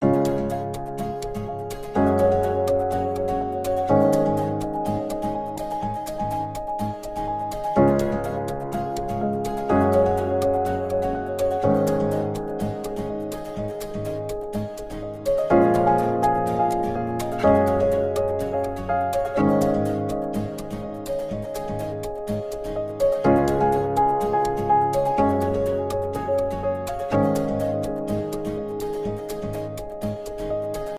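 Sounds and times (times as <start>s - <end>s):
guitar: 0.0s - 30.9s
happy piano music: 0.0s - 30.9s.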